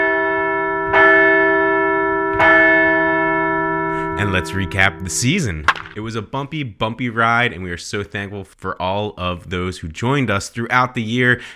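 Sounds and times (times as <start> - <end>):
large bell ringing: 0.0 - 5.6
speech: 4.2 - 11.5.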